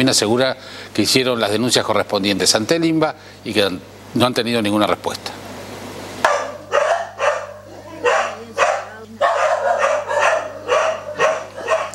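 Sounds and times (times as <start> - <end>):
speech: 0.0 - 5.4
dogs barking inside locked apartment: 6.2 - 11.9.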